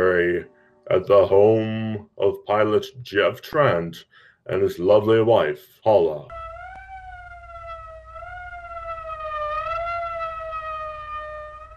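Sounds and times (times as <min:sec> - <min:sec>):
speech: 0:00.3 - 0:06.4
police siren wailing: 0:06.3 - 0:11.7.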